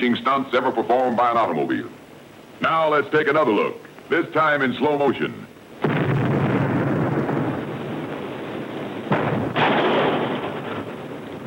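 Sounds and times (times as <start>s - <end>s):
speech: 0.0s - 2.0s, 2.6s - 5.5s
loud rumbling blast of a car fired from a cannon: 5.8s - 11.4s.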